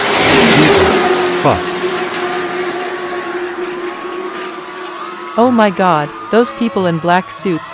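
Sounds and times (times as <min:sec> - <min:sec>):
big SUVs speeding past with engines revving: 0:00.0 - 0:05.4
speech: 0:01.4 - 0:01.7, 0:05.4 - 0:07.7.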